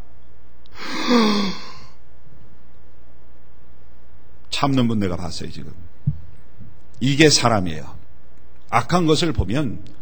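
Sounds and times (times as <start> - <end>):
person yawning: 0.8 - 1.9
speech: 1.1 - 1.6, 4.6 - 6.0, 7.0 - 8.0, 8.7 - 9.9.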